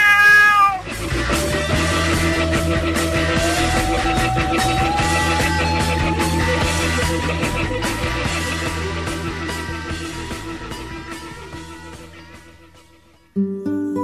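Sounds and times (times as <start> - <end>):
cat meowing: 0.0 - 0.9
music with a sustained tone gliding upward: 0.8 - 14.0.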